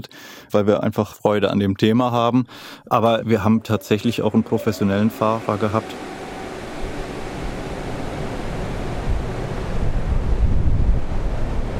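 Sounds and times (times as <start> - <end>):
speech: 0.0 - 6.0
wind tunnel giant fan blowing air: 4.2 - 11.7.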